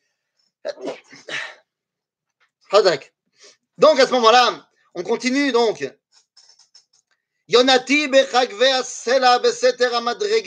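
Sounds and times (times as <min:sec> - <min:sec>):
speech: 0:00.6 - 0:01.3, 0:02.7 - 0:03.2, 0:03.8 - 0:06.0, 0:07.5 - 0:10.4
person sneezing: 0:00.7 - 0:01.6.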